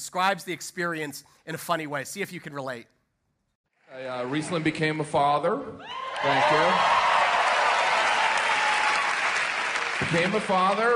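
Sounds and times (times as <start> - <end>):
speech: 0.0 - 3.0, 3.9 - 7.1, 10.0 - 10.9
crowd applauding a comedian: 6.0 - 10.9.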